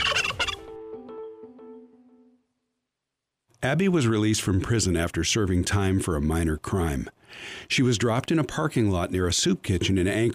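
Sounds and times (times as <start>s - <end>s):
turkey gobbling with trailing clucks: 0.0s - 0.7s
speech: 3.6s - 10.3s.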